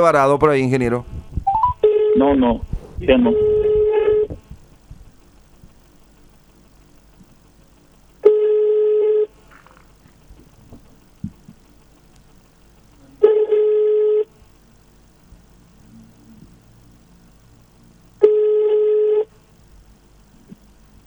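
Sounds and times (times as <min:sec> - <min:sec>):
speech: 0:00.0 - 0:01.1, 0:02.2 - 0:03.5
faint telephone line hiss: 0:00.0 - 0:21.0
telephone ringback tone on call to municipal tow truck service: 0:01.5 - 0:02.4, 0:03.2 - 0:04.3, 0:08.3 - 0:09.3, 0:18.2 - 0:19.3.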